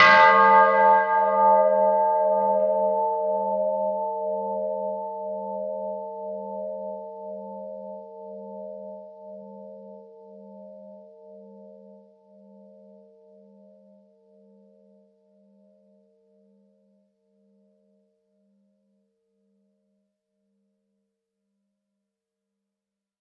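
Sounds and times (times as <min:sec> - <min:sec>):
church bell ringing: 0:00.0 - 0:07.0.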